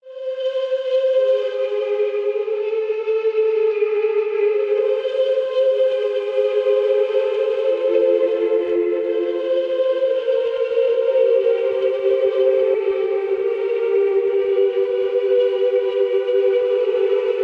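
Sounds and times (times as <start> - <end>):
ghostly atmospheric tones in D minor at 110 bpm: 0.2 - 17.4.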